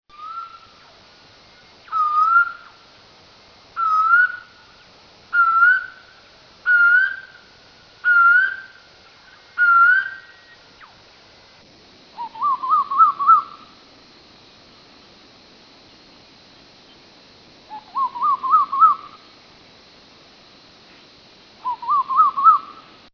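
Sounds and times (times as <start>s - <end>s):
common koel calling: 0.1s - 2.8s, 3.8s - 11.0s, 12.2s - 13.8s, 17.7s - 19.3s, 21.6s - 22.9s.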